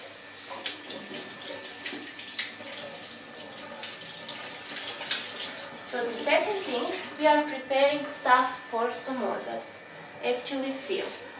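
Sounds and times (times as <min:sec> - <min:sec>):
water running from a tap: 0:00.0 - 0:07.2
speech: 0:06.0 - 0:11.2.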